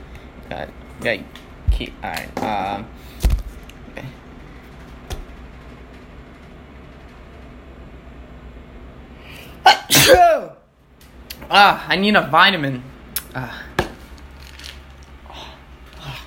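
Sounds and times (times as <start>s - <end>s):
quiet hum: 0.0s - 16.2s
speech: 0.5s - 3.3s, 10.0s - 10.6s, 11.4s - 13.6s
person sneezing: 9.6s - 10.6s.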